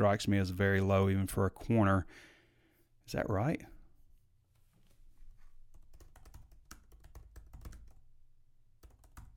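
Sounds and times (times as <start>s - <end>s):
speech: 0.0s - 2.3s, 3.1s - 3.8s
rapid clicking of keys on a computer keyboard: 5.7s - 8.1s, 8.8s - 9.3s.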